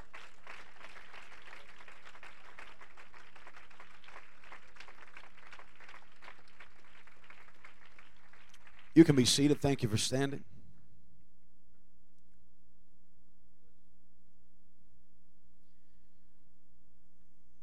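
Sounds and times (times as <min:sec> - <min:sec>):
church congregation clapping hands in praise: 0:00.0 - 0:10.4
speech: 0:09.0 - 0:10.5.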